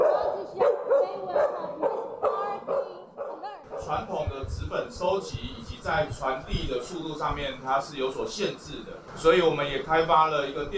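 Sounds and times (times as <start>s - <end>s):
search and rescue dog barking: 0.0s - 4.1s
low murmur: 0.0s - 10.7s
speech: 3.9s - 10.7s.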